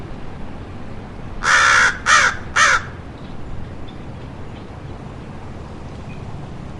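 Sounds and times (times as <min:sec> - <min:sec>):
American crow Corvus brachyrhynchos giving loud harsh caws: 0:01.4 - 0:03.0.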